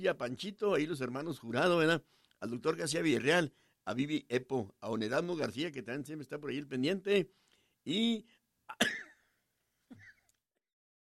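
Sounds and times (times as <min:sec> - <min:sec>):
speech: 0:00.0 - 0:09.0
person coughing in harsh bursts: 0:08.7 - 0:09.3, 0:09.9 - 0:10.3.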